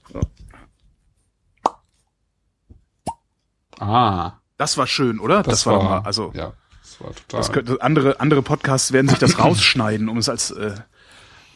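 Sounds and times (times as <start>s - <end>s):
speech: 0.1s - 0.4s, 3.9s - 11.2s
cork popping drawn with a corkscrew: 1.6s - 1.9s, 3.0s - 3.3s
laughter: 9.0s - 9.8s.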